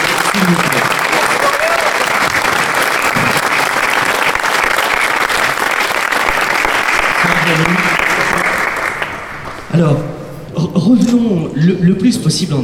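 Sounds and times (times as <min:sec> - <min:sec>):
large audience applause: 0:00.0 - 0:09.7
speech: 0:00.5 - 0:00.8, 0:09.8 - 0:10.1, 0:10.9 - 0:12.6.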